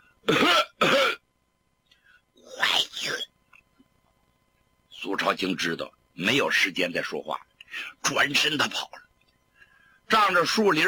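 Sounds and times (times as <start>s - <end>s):
man coughing: 0.2s - 1.2s
speech: 5.2s - 9.0s, 10.1s - 10.8s.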